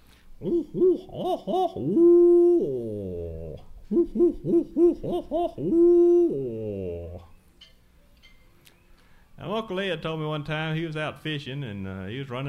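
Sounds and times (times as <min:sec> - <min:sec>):
speech: 0:00.4 - 0:07.2, 0:09.4 - 0:12.4
owls hooting along a riverbank in river swamps: 0:00.4 - 0:07.4.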